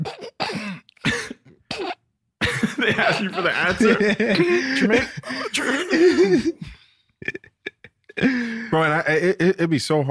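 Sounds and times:
harsh coughs: 0.0 - 7.4
laughter: 2.4 - 9.0
speech: 2.8 - 6.7, 8.3 - 10.0.

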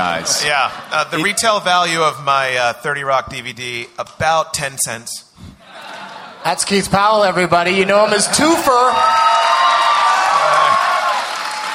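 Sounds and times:
laughter: 0.0 - 2.2, 5.6 - 8.9
speech: 0.0 - 5.3, 6.4 - 9.7
cheers and whoops: 8.8 - 11.7
large audience clapping: 9.2 - 11.7.

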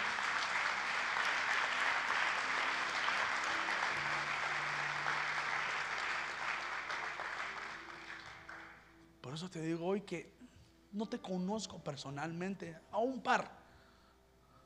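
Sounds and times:
large church audience applauding: 0.0 - 8.9
speech: 9.4 - 13.6.

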